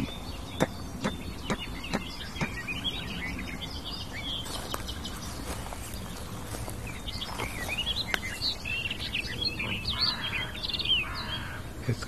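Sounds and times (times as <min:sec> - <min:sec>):
birds chirping and twittering outdoors: 0:00.0 - 0:12.0
crows calling near their nest: 0:00.0 - 0:12.0.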